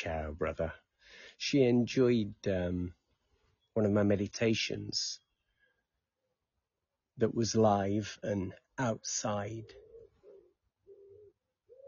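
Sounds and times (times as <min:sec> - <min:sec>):
speech: 0:00.0 - 0:03.0, 0:03.8 - 0:05.2, 0:07.2 - 0:09.8
doves or wood pigeons cooing outdoors: 0:09.6 - 0:11.8.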